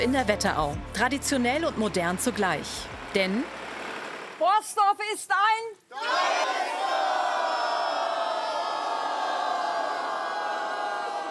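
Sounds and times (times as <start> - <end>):
speech: 0.0 - 3.6, 4.4 - 6.4
crowd cheering and shouting at an event in a small town in the Wetterau: 5.9 - 11.3.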